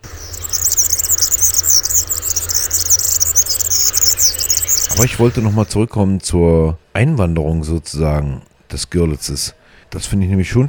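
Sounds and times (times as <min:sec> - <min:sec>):
European serin singing: 0:00.0 - 0:05.7
speech: 0:05.0 - 0:10.6.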